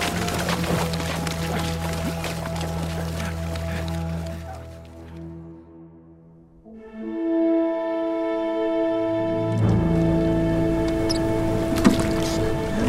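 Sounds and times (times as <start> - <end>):
oars splashing as a sloop is rowed: 0.0 - 5.0, 10.8 - 12.8
sustained layered musical tones: 0.0 - 12.8.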